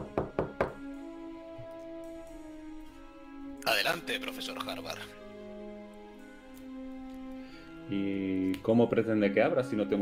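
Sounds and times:
firm knocks on a wooden door: 0.0 - 0.9
speech: 3.7 - 5.2, 7.9 - 10.0.

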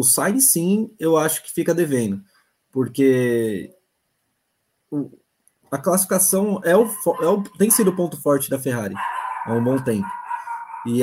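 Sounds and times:
speech: 0.0 - 3.8, 4.9 - 10.2, 10.8 - 11.0
dog barking and yipping: 6.6 - 8.2, 8.8 - 11.0.

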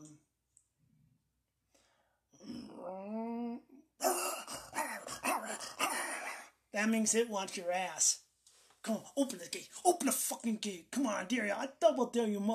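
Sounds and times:
person imitating a dog's aggressive attack bark: 2.6 - 6.5
speech: 6.8 - 8.2, 8.8 - 12.5.

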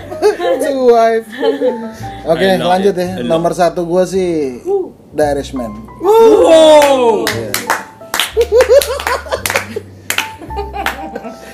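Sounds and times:
speech: 0.6 - 7.6, 8.4 - 9.2
brief cheers: 6.0 - 7.5
excited voices: 6.0 - 7.5
enthusiastic hand clapping from a small group: 6.7 - 11.5
laughter: 8.4 - 11.5.

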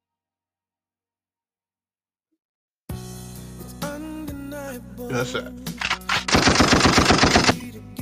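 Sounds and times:
speech: 4.7 - 5.8
automatic gunfire: 5.8 - 7.7.

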